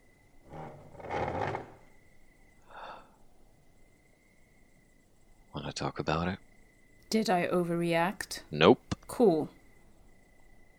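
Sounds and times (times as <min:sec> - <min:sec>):
wooden chair being pulled across the floor: 0:00.4 - 0:01.9
speech: 0:05.8 - 0:06.5, 0:07.1 - 0:09.6.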